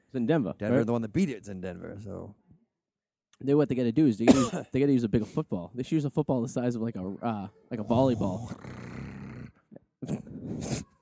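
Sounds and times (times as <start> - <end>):
speech: 0.1 - 2.4, 3.4 - 8.9, 10.0 - 10.9
man imitating a growl: 7.8 - 10.7.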